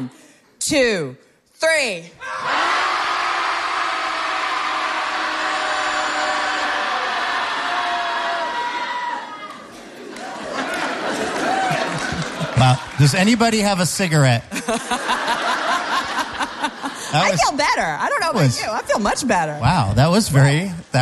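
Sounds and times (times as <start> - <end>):
speech: 0.0 - 2.5, 12.6 - 15.3, 17.1 - 21.0
group of people shouting together in a loud sustained roar: 2.2 - 9.6
laughter: 9.7 - 13.4, 14.4 - 18.8.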